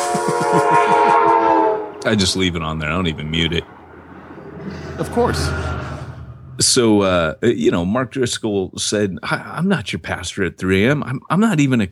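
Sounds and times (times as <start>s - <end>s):
train horn blaring: 0.0s - 6.6s
speech: 2.0s - 3.8s, 5.0s - 5.8s, 6.6s - 11.9s
rumble of rolling train wheels: 2.0s - 6.8s.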